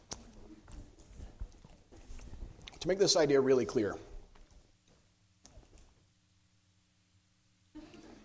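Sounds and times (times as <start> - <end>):
crunchy chewing of chalky mints: 0.0 - 3.0, 4.2 - 6.1
speech: 2.8 - 4.1.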